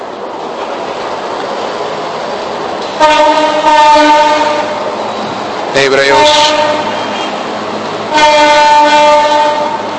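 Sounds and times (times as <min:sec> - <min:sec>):
train rumbling past: 0:00.0 - 0:09.9
speech: 0:03.0 - 0:03.8, 0:05.8 - 0:06.9
train horn chord: 0:03.0 - 0:04.8, 0:06.1 - 0:07.4, 0:08.1 - 0:09.9.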